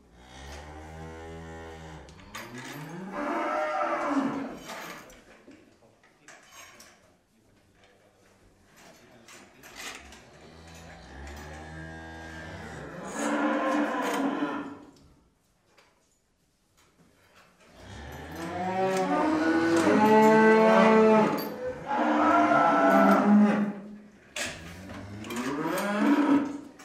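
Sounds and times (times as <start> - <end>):
cow mooing: 2.9 - 4.6, 10.6 - 14.8, 17.8 - 23.8, 24.8 - 26.6.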